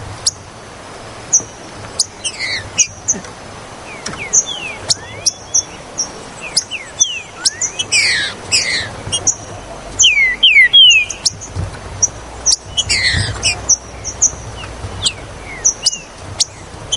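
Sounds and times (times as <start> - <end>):
green-winged saltator song with slurred whistles, ticks and chirps: 1.3 - 3.2, 3.8 - 16.9.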